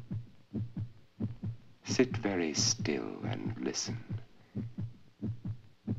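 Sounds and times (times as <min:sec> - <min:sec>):
human heartbeat: 0:00.0 - 0:05.9
speech: 0:01.9 - 0:04.1.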